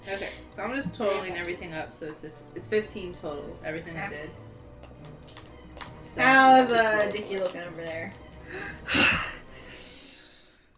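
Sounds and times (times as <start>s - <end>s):
speech: 0.1s - 4.5s, 6.2s - 9.1s
heavy winded breathing after exertion: 8.4s - 10.7s.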